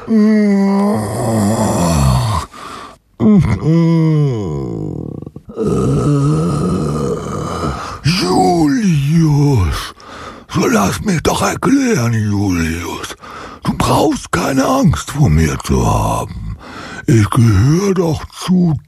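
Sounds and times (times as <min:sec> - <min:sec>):
speech: 0:00.0 - 0:01.6, 0:03.4 - 0:05.0, 0:10.9 - 0:13.2, 0:13.9 - 0:18.8
long drawn-out pitiful groaning moans: 0:00.0 - 0:09.8.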